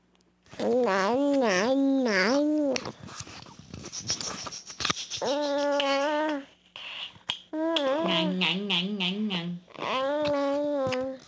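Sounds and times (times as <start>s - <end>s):
infant babbling alternating consonants and vowels: 0.6s - 2.8s, 5.2s - 6.5s, 7.6s - 8.6s, 9.6s - 11.2s.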